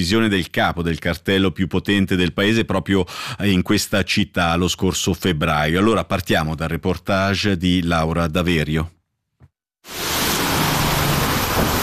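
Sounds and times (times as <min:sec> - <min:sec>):
speech: 0:00.0 - 0:09.0, 0:09.8 - 0:10.1
heavy rain pouring: 0:09.9 - 0:11.8.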